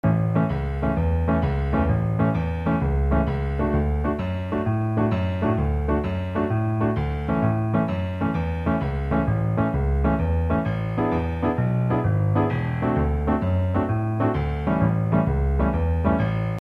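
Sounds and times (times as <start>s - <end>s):
solo blues piano: 0.0s - 16.5s.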